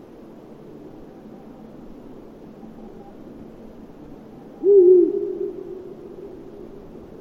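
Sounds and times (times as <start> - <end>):
Ural owl deep hollow hoot: 4.3 - 6.9.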